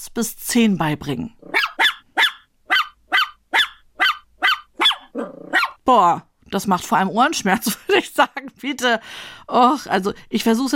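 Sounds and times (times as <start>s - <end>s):
speech: 0.1s - 1.6s, 5.9s - 10.7s
dog barking: 1.5s - 5.8s.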